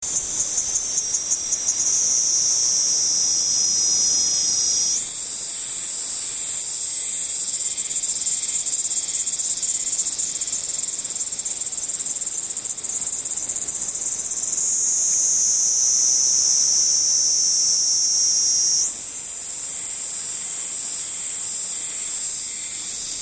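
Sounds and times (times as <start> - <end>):
niinii zemi cicada: 0.0 - 23.2.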